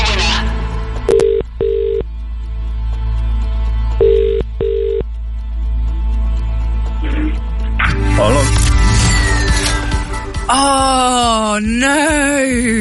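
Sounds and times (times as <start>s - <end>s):
low hum: 0.0s - 12.8s
telephone ringback tone on an outgoing call: 1.1s - 2.0s, 4.0s - 5.0s.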